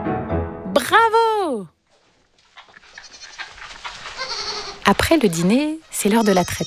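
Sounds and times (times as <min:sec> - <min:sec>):
speech: 0:00.8 - 0:01.7, 0:04.9 - 0:06.6
goats bleating: 0:02.8 - 0:06.6.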